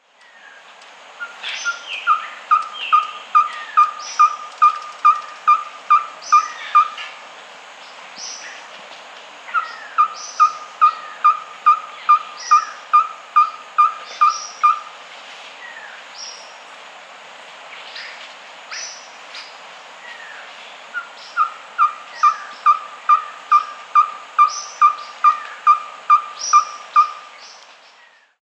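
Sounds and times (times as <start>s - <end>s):
Ferruginous Pygmy-Owl Glaucidium in S. America: 1.2s - 7.2s, 9.5s - 14.9s, 17.9s - 28.4s.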